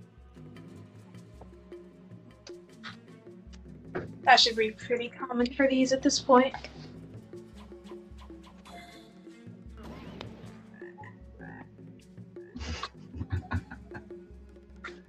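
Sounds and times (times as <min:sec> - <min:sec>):
speech: 0:04.3 - 0:06.8
toad croaking: 0:10.6 - 0:11.8
laughter: 0:12.6 - 0:14.2.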